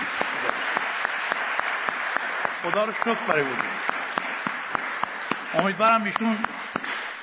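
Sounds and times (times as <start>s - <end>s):
audience applause: 0.0s - 7.2s
speech: 2.6s - 3.9s, 5.5s - 6.6s.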